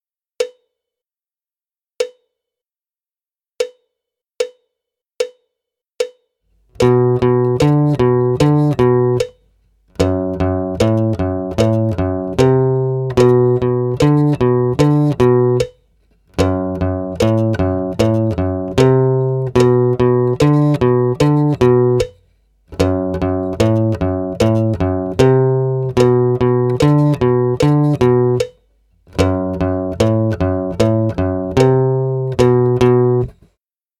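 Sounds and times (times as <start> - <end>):
acoustic guitar riff: 6.7 - 33.4.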